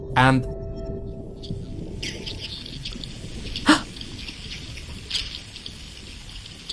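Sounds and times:
speech: 0.2s - 2.5s
herring ticks and crackles through an underwater hydrophone: 1.4s - 6.7s.

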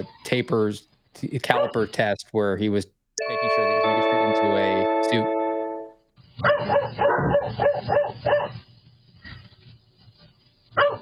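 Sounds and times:
speech: 0.0s - 5.4s, 6.4s - 8.6s
dog barking: 1.5s - 1.8s, 6.4s - 8.6s, 10.8s - 10.9s.

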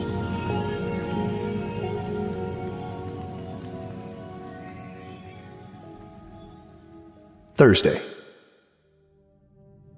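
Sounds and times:
rain beating on a metal roof: 0.0s - 7.3s
speech: 7.6s - 8.2s.

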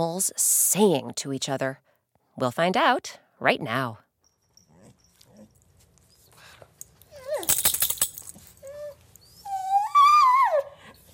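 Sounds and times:
speech: 0.0s - 4.0s
dog whining: 4.3s - 11.1s.

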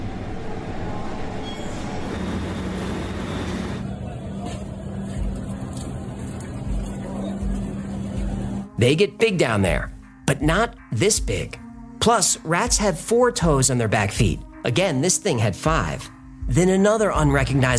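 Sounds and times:
metallic rail noise: 0.0s - 8.6s
subway train running: 0.0s - 8.6s
speech: 8.8s - 17.7s.

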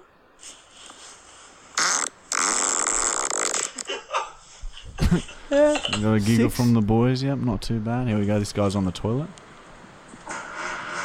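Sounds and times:
fart: 1.8s - 3.9s
speech: 5.1s - 9.4s.

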